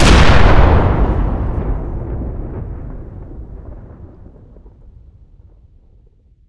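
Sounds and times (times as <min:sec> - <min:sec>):
Bofors shot: 0:00.0 - 0:05.0.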